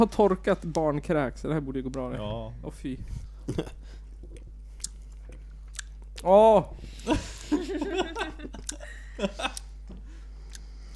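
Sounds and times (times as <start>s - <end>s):
speech: 0.0s - 4.0s, 6.2s - 9.6s
person chewing an orange speckled vomit-flavoured jelly bean: 4.0s - 6.2s, 8.6s - 8.9s, 10.4s - 10.9s
laughter: 7.0s - 9.7s.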